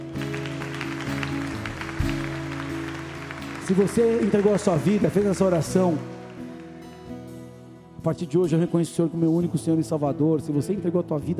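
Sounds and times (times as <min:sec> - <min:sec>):
congregation applauding: 0:00.0 - 0:07.4
sustained keyboard chords: 0:00.0 - 0:11.3
speech: 0:03.7 - 0:06.1, 0:08.0 - 0:11.3.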